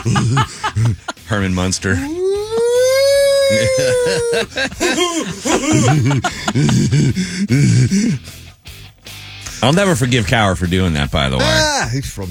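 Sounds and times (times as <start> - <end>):
loud laughter: 0.0 - 1.3, 2.0 - 8.2
speech: 0.0 - 2.2, 3.5 - 8.4, 9.6 - 12.2
animated voices: 2.0 - 4.4
hand-cranked siren wailing: 2.1 - 4.4.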